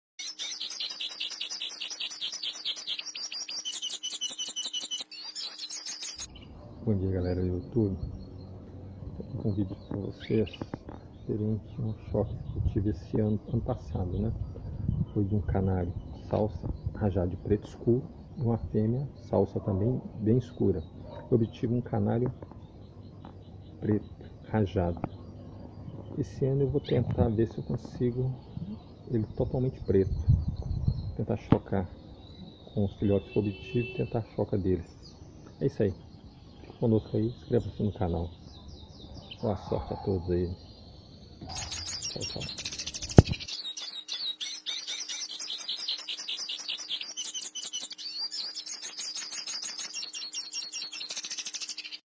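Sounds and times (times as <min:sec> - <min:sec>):
black Belgian canary singing: 0:00.2 - 0:31.2, 0:31.8 - 0:52.0.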